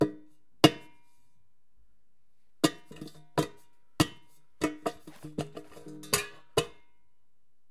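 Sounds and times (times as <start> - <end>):
metal objects clattering: 4.7 - 6.6.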